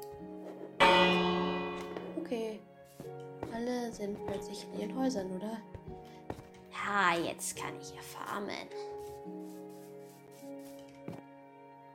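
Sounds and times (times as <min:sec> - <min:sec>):
video game village bell clanging: 0:00.8 - 0:02.6
speech: 0:03.9 - 0:05.8, 0:06.9 - 0:08.9.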